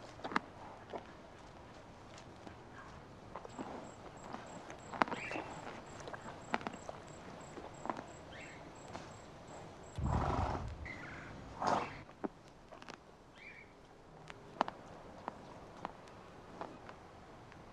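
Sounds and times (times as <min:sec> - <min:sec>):
quiet outdoor background: 0:00.0 - 0:17.7
horse whinnying: 0:10.0 - 0:12.0.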